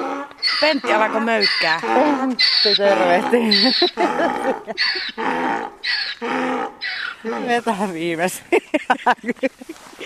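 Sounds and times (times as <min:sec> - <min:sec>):
donkey braying loudly: 0:00.0 - 0:07.7
speech: 0:00.6 - 0:10.0
laughter: 0:03.4 - 0:05.2, 0:08.4 - 0:10.0.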